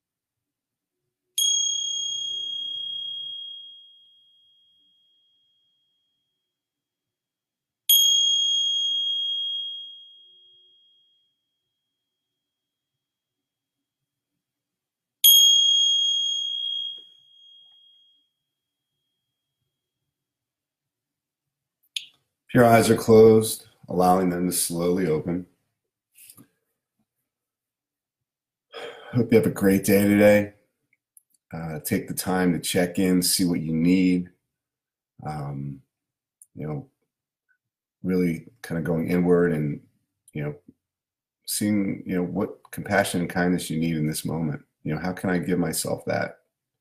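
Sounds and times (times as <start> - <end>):
clear meditation bell ringing: 1.4 - 6.6, 7.9 - 12.1, 15.2 - 19.5
speech: 22.5 - 25.5, 29.1 - 30.6, 31.5 - 34.3, 35.2 - 35.8, 36.6 - 36.9, 38.0 - 39.8, 40.4 - 40.7, 41.5 - 46.4.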